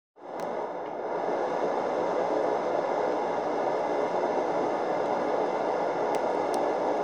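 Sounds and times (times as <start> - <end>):
air vent: 0.2 - 7.0.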